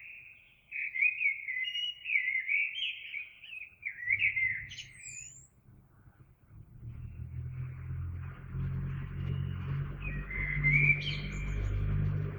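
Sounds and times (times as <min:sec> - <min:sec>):
Eurasian blackbird warbling song: 0:00.0 - 0:12.3
low rumbling background noise: 0:04.0 - 0:12.3.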